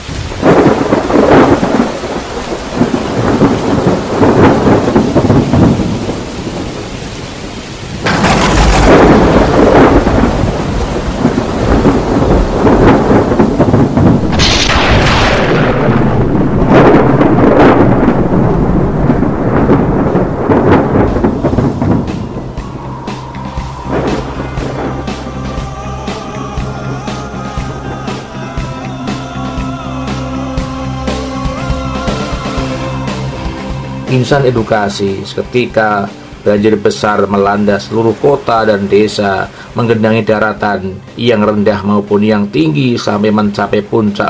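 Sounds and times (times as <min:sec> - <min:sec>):
loud thunder cracks and rumbling rolls: 0:00.0 - 0:34.4
heavy steady torrential downpour: 0:00.0 - 0:44.2
speech: 0:34.2 - 0:44.2.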